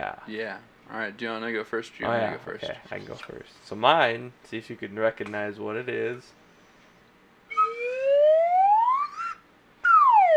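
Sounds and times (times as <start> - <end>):
speech: 0.2 - 6.4
slide whistle gliding up and down in pitch: 7.5 - 10.3.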